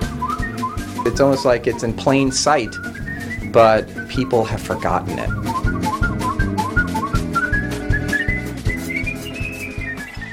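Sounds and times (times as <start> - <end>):
rhythmic instrumental accompaniment with a pulsing low beat: 0.0 - 10.2
person whistling a lilting melody: 0.0 - 10.3
speech: 1.0 - 3.0, 3.6 - 5.5.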